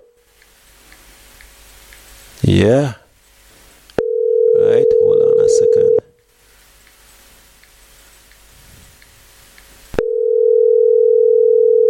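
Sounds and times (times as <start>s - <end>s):
speech: 2.4s - 3.0s
electronic telephone ringing tone through the line: 4.0s - 6.1s, 10.0s - 11.8s.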